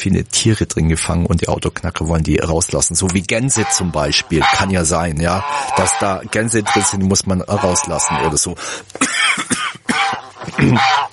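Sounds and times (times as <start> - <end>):
speech: 0.0 - 11.1
harsh raspy coughing fit: 8.6 - 11.1.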